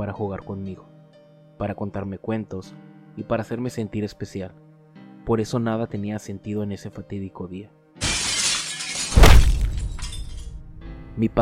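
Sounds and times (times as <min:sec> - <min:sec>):
speech: 0:00.0 - 0:01.0, 0:01.6 - 0:04.6, 0:05.2 - 0:07.8, 0:11.2 - 0:11.4
scattered glass shards tinkling as they settle: 0:08.0 - 0:10.6
window glass shattering as a man throws himself through a second-floor window: 0:08.0 - 0:10.8
heavy impact: 0:08.0 - 0:10.9.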